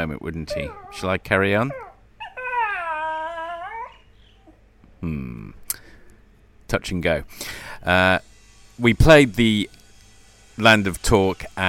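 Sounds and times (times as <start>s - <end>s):
speech: 0.0s - 1.9s, 5.0s - 5.8s, 6.7s - 9.8s, 10.6s - 11.6s
dog whimpering for food: 0.4s - 4.7s.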